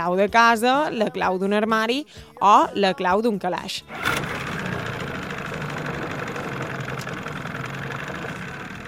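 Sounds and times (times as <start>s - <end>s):
speech: 0.0s - 4.4s
car engine idling with faint mechanical rattle: 3.9s - 8.8s.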